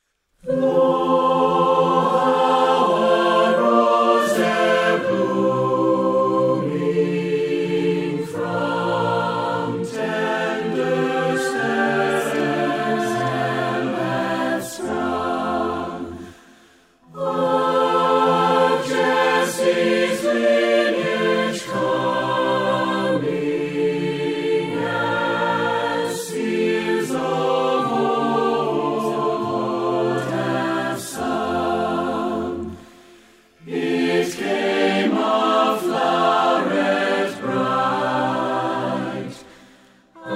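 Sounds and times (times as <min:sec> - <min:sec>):
choir singing a melody: 0:00.0 - 0:40.3.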